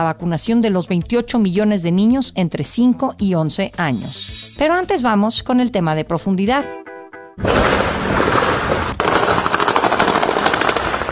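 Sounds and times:
speech: 0:00.0 - 0:06.8, 0:07.4 - 0:07.8
automatic gunfire during a chase of armed civilians by soldiers and police in Matamoros, Tamaulipas, Mexico: 0:07.4 - 0:11.0.

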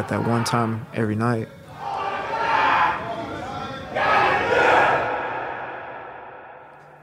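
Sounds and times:
crowd of prisoners shouting together on a cell tier: 0:00.0 - 0:00.8, 0:01.6 - 0:06.6
speech: 0:00.0 - 0:01.6.

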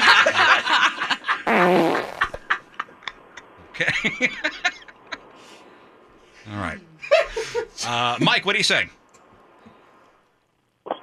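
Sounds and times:
laughter: 0:00.0 - 0:05.2, 0:07.0 - 0:07.9
loud drawn-out fart with a sputtering buzzy quality: 0:01.5 - 0:02.4
speech: 0:03.8 - 0:04.7, 0:07.8 - 0:09.0.

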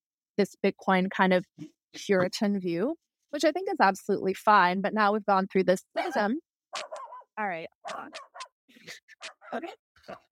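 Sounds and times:
speech: 0:00.4 - 0:10.3
dog barking in short yips and woofs: 0:06.8 - 0:08.5.

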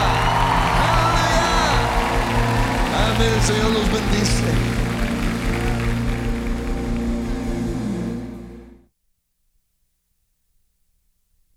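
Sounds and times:
scattered shouts and whoops: 0:00.0 - 0:06.1
large crowd applauding: 0:00.0 - 0:08.3
speech: 0:03.4 - 0:04.8.

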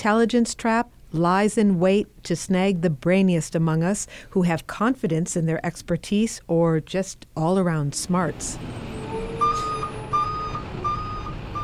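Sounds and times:
speech: 0:00.0 - 0:09.0
truck backup alarm beeping in high tones: 0:08.7 - 0:11.6.

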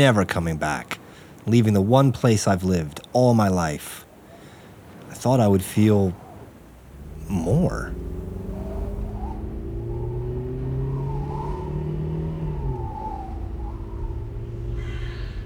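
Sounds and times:
speech: 0:00.0 - 0:04.0, 0:05.2 - 0:06.2, 0:07.3 - 0:08.2
road rumble: 0:00.0 - 0:15.4
car engine drone on an empty desert road: 0:06.5 - 0:15.4.

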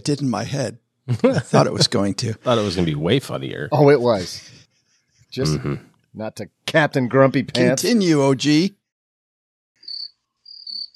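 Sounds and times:
speech: 0:00.0 - 0:04.6, 0:05.3 - 0:08.8
laughter: 0:00.3 - 0:04.5, 0:05.4 - 0:05.8
cricket chirping sound effect: 0:09.8 - 0:10.9.

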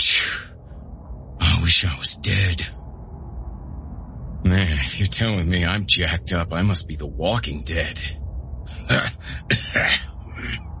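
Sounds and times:
speech: 0:01.7 - 0:02.8, 0:04.5 - 0:08.2, 0:08.9 - 0:10.7
badly injured man coughing: 0:08.7 - 0:10.6
badly injured man clearing his throat: 0:08.9 - 0:10.6.

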